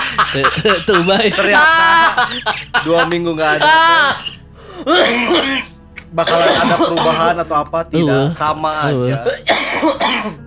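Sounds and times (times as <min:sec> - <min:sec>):
laughter: 0:00.0 - 0:05.4
speech: 0:00.2 - 0:10.4
woman coughing and clearing throat: 0:04.9 - 0:07.4, 0:09.2 - 0:10.4.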